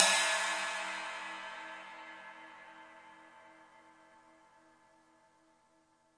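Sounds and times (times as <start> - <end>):
live drum kit: 0.0 - 1.3.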